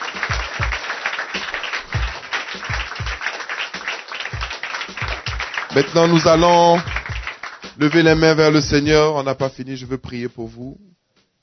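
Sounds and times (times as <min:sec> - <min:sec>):
church congregation applauding during a worship service: 0:00.0 - 0:08.9
low rhythmic thumps: 0:00.0 - 0:11.4
speech: 0:05.8 - 0:06.9, 0:07.8 - 0:10.9.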